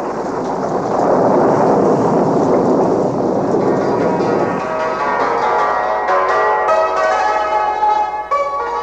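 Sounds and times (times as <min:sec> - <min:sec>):
loud thunderstorm: 0:00.0 - 0:06.8
heavy rain: 0:00.0 - 0:08.8
ringing bell-like musical tones: 0:03.7 - 0:08.8.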